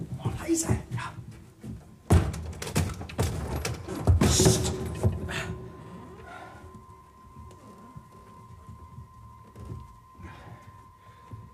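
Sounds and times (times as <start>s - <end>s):
speech: 0.5s - 1.2s
door being opened in the dark: 2.0s - 5.7s.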